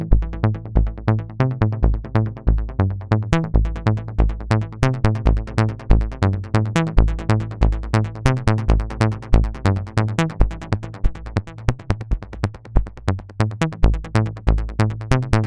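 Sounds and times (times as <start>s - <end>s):
Roland Juno-106 synthesizer arpeggio with external effects: 0.2s - 15.4s.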